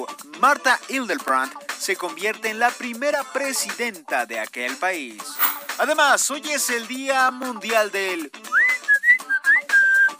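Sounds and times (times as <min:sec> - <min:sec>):
speech: 0:00.0 - 0:08.6
person whistling a short lively tune: 0:08.5 - 0:10.1.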